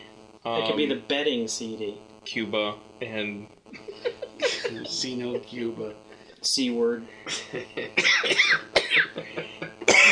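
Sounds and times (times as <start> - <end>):
speech: 0.4 - 4.1, 4.7 - 9.7
laughter: 3.7 - 5.8, 7.3 - 8.4, 9.0 - 10.0
person coughing harshly: 3.9 - 5.0, 7.3 - 10.0.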